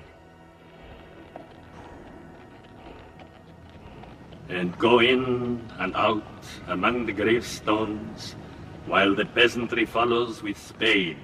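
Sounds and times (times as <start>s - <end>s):
dense continuous outdoor noise: 0.0s - 11.2s
horse with a rider trotting toward a village cemetery: 0.0s - 11.2s
speech: 4.5s - 11.2s.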